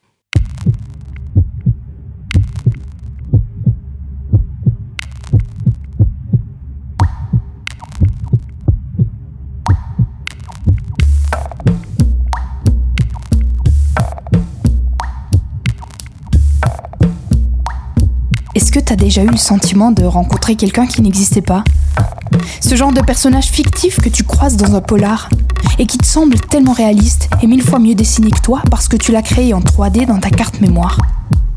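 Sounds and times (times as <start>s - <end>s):
heartbeat-like low thump of a song intro: 0.4s - 31.5s
sharper bright percussive hits: 9.7s - 27.7s
speech: 18.9s - 31.1s.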